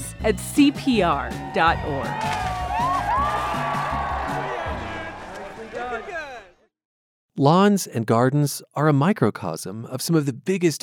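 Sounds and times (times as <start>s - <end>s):
speech: 0.2s - 2.5s, 7.4s - 10.8s
outdoor crowd cheering and whooping at a pond skimming event: 0.6s - 6.6s
people shouting at a pond skimming event: 0.6s - 6.6s.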